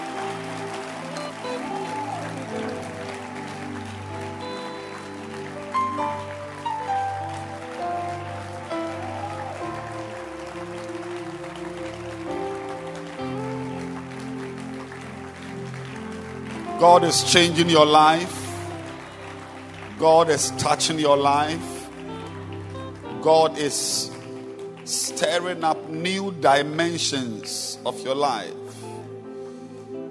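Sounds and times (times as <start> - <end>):
audience clapping loudly: 0.0 - 29.7
speech: 16.8 - 18.4, 20.0 - 21.8, 23.2 - 24.2, 24.9 - 28.6.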